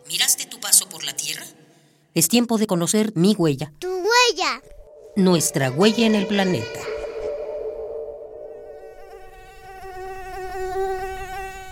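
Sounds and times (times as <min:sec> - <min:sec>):
speech: 0:01.0 - 0:06.9
mosquito whining: 0:05.0 - 0:11.7.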